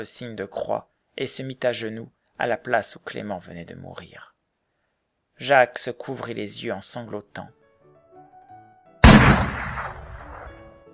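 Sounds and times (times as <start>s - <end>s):
speech: 0.0s - 4.3s, 5.4s - 7.6s
single pistol shot fired beside a guillotine scaffold: 9.0s - 10.7s.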